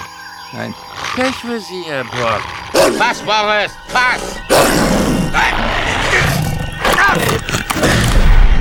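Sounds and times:
speech: 0.5s - 5.7s, 7.1s - 7.9s
dog growling and snarling: 0.9s - 1.5s, 2.1s - 3.3s, 3.9s - 8.4s.

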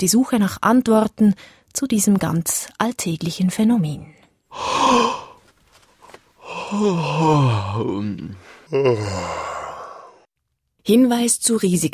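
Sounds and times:
speech: 0.0s - 5.3s, 6.5s - 9.5s, 10.8s - 11.9s
person yawning: 4.5s - 5.4s, 6.4s - 10.2s.

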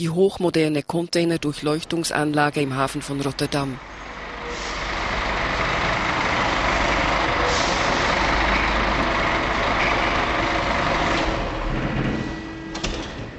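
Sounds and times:
speech: 0.0s - 4.0s
heavy truck engine rumbling at port customs checkpoint: 1.4s - 13.3s
truck air brakes hissing: 3.9s - 8.9s.

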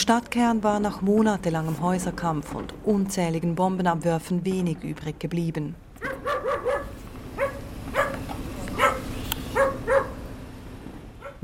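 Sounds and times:
speech: 0.0s - 5.8s
stray dog barking wildly in a war-ruined town: 6.0s - 10.3s, 11.2s - 11.4s.

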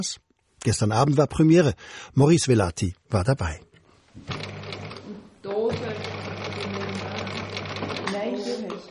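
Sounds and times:
speech: 0.0s - 4.5s
sewing machine stitching faux fur fabric: 4.2s - 8.3s.

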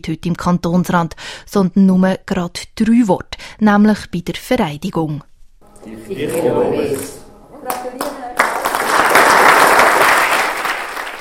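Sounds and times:
speech: 0.0s - 8.1s
applause from a sizable indoor gathering in parliament welcoming new officials: 5.7s - 11.2s.

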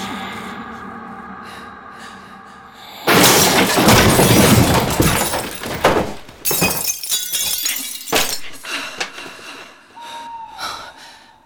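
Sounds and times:
crash of a father stumbling into a nightstand: 3.1s - 6.8s
glass breaking and clinking: 3.1s - 9.2s
objects knocking and rattling as they settle: 3.1s - 9.3s.

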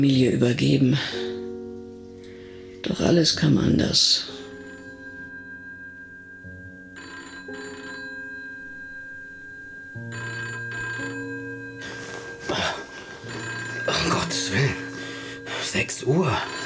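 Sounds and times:
speech: 0.0s - 1.3s, 2.8s - 4.4s
telephone ringing: 4.3s - 5.6s, 6.4s - 16.6s
rustling: 11.5s - 15.5s.

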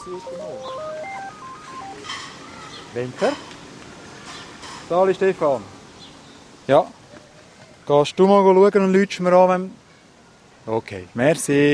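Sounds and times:
speech: 0.0s - 1.3s, 2.0s - 3.5s, 4.9s - 5.8s, 6.7s - 7.0s, 7.9s - 9.8s, 10.6s - 11.7s
mobile phone ringing with a melodic electronic ringtone: 0.0s - 2.3s.

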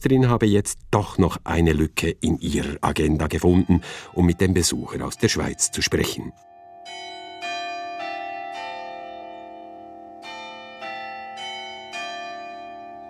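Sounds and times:
speech: 0.0s - 7.0s
town hall carillon bells ringing: 3.2s - 13.0s.

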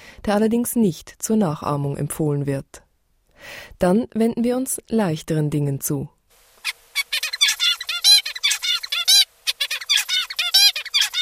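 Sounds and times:
speech: 0.3s - 2.8s, 3.4s - 6.8s
zebra finch singing: 6.6s - 11.2s.

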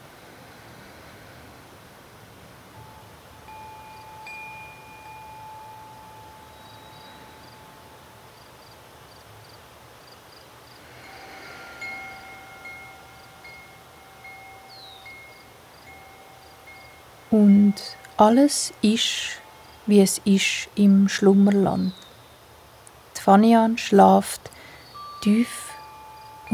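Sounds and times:
constant hiss of rushing water or wind: 0.0s - 26.5s
cricket chirping: 0.0s - 26.5s
speech: 17.3s - 22.0s, 23.2s - 24.6s, 25.2s - 25.6s.

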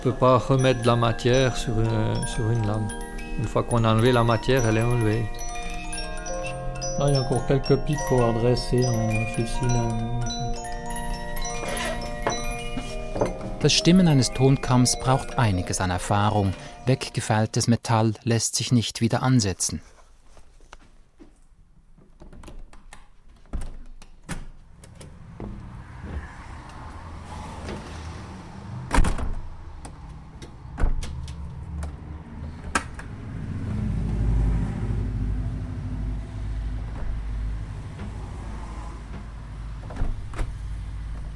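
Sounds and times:
speech: 0.0s - 5.5s, 7.0s - 10.7s, 13.2s - 19.9s
bus door thumping and sliding shut with mechanical clunks: 0.0s - 17.0s, 22.6s - 35.6s, 36.2s - 41.3s.

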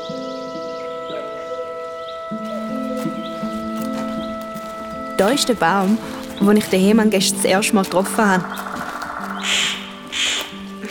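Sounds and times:
harsh rasping scolding bird calls: 0.0s - 10.8s
speech: 5.2s - 8.8s.

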